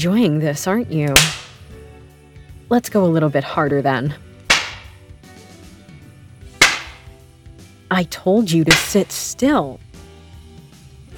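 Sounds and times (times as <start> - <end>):
speech: 0.0 - 1.4, 2.7 - 4.3, 7.9 - 9.8
sharp loud whip cracks: 1.2 - 1.6, 4.5 - 4.9, 6.6 - 7.1, 8.7 - 9.0.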